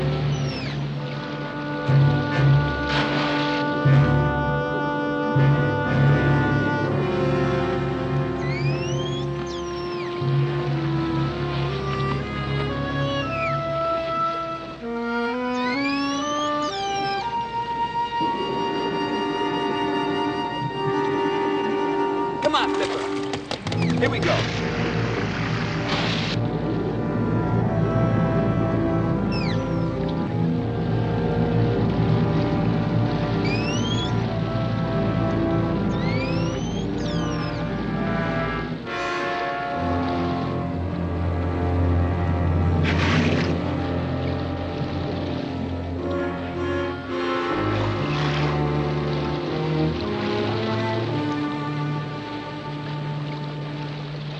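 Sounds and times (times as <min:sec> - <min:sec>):
boat engine running with a low rumbling drone: 0:00.0 - 0:54.3
rushing water: 0:00.0 - 0:54.3
faint high squeaks: 0:08.4 - 0:10.2, 0:33.4 - 0:34.2, 0:35.9 - 0:37.6.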